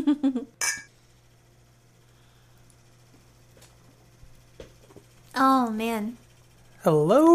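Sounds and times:
quiet steady hum: 0:00.0 - 0:07.3
beer glasses of Belgian-style tripel ale clinking in a toast: 0:00.6 - 0:00.9
speech: 0:05.4 - 0:06.2, 0:06.8 - 0:07.3.

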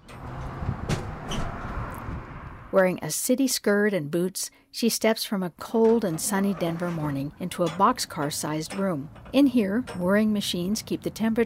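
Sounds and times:
rusty metal latch creaking: 0:00.0 - 0:01.8, 0:05.6 - 0:11.4
heavy container door scraping open: 0:00.0 - 0:02.8, 0:05.8 - 0:10.2
speech: 0:02.7 - 0:11.4.

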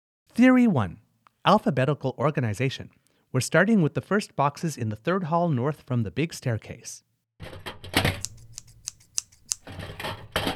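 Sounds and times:
speech: 0:00.4 - 0:07.7
scissors snipping: 0:08.1 - 0:09.8.

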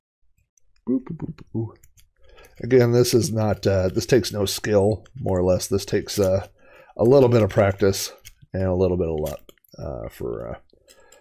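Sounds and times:
person murmuring: 0:00.9 - 0:01.9
speech: 0:00.9 - 0:01.9, 0:02.6 - 0:10.6
lock pins clicking as a lock is picked: 0:01.8 - 0:11.1.

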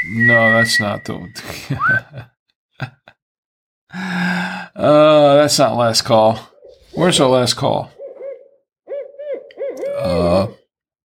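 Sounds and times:
speech: 0:00.1 - 0:03.1, 0:03.9 - 0:08.0, 0:10.0 - 0:10.6
owl hooting: 0:07.9 - 0:10.4.

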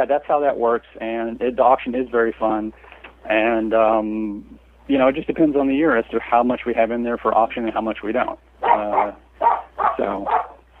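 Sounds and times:
speech: 0:00.0 - 0:10.5
small dog barking: 0:08.6 - 0:10.6.

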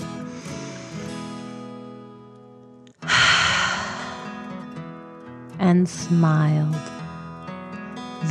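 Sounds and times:
soft sustained music: 0:00.0 - 0:08.3
deep breath in and out: 0:00.1 - 0:01.7, 0:03.0 - 0:04.6
speech: 0:05.6 - 0:06.9.

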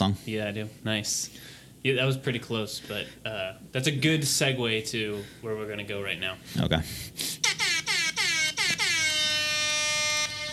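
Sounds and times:
speech: 0:00.1 - 0:07.4
hip-hop air horn sound effect: 0:07.4 - 0:10.5.

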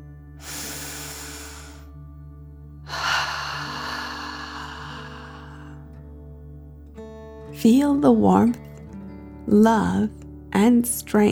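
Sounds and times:
slow deep breath in and out: 0:00.4 - 0:01.9, 0:02.9 - 0:05.9
steady low drone: 0:00.4 - 0:01.9, 0:02.9 - 0:05.9
speech: 0:07.5 - 0:08.6, 0:09.5 - 0:11.3.

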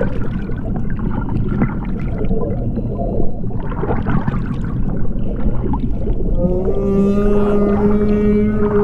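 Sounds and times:
gurgling watery rumble: 0:00.0 - 0:08.8
whale song moans made by rubbing rubber balls on a water-filled container: 0:05.7 - 0:08.8.

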